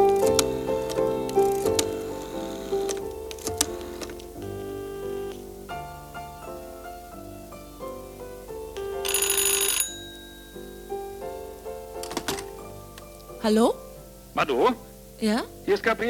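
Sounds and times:
telephone ringing: 0.0 - 5.9, 8.8 - 12.6
sustained melodic notes: 0.0 - 15.6
speech: 13.5 - 13.8, 14.4 - 16.0.

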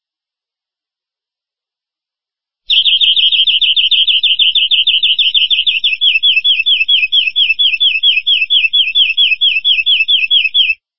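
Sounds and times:
domestic canary trilling: 2.7 - 10.8.

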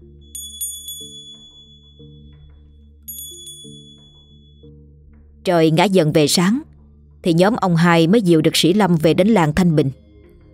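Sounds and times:
bell ringing near a horse stable: 0.3 - 2.3, 3.1 - 4.5
speech: 5.5 - 10.0.

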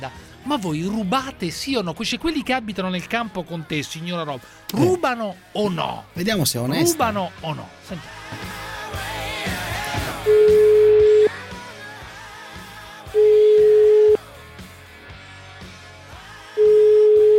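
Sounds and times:
speech: 0.0 - 9.1
ringing tone of an outgoing telephone call: 10.3 - 11.4, 13.2 - 14.2, 16.6 - 17.3.

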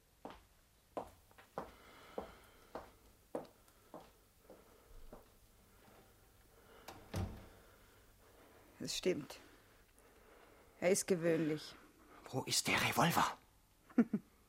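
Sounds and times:
window shutters being pulled shut and bolted: 6.7 - 7.7
speech: 8.8 - 9.5, 10.8 - 13.4, 14.0 - 14.3.

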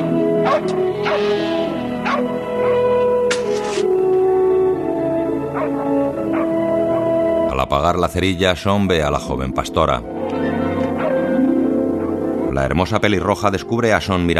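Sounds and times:
steady tonal background: 0.0 - 14.3
dog yipping and barking while herding sheep in a meadow: 0.4 - 1.3, 2.0 - 2.8
speech: 7.7 - 10.3, 12.6 - 14.3.

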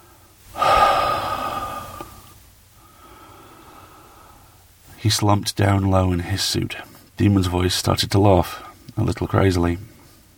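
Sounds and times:
heavy exhale: 0.5 - 4.6
speech: 5.0 - 9.9.

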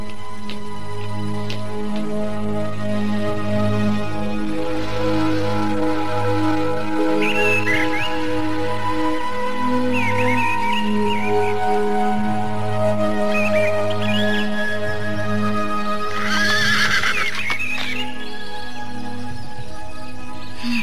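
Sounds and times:
steady low tonal drone: 0.0 - 20.8
horse neighing in a palace courtyard: 16.2 - 17.4.

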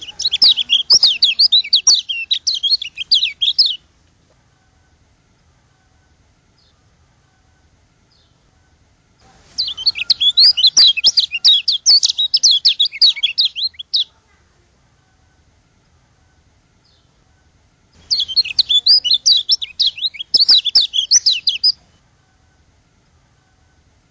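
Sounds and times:
white-eye singing rapid high chirps on Lombok: 0.0 - 3.9, 5.6 - 14.2, 16.2 - 22.6.

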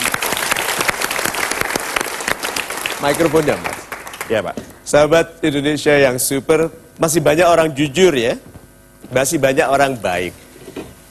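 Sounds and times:
studio audience applause at a motivational talk show: 0.0 - 4.5
speech: 3.0 - 10.4.

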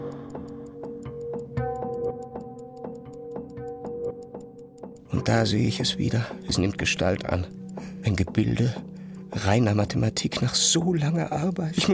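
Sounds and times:
wristwatch ticking on a bedside table: 0.0 - 11.9
speech: 5.2 - 11.9.

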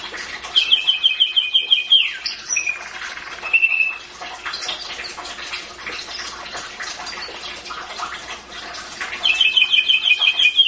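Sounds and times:
Atlantic canary singing: 0.5 - 4.0, 9.2 - 10.6.

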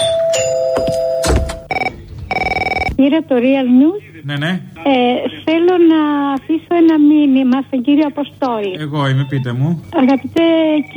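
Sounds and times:
electronic doorbell chime: 0.0 - 1.6
speech: 3.0 - 10.9.

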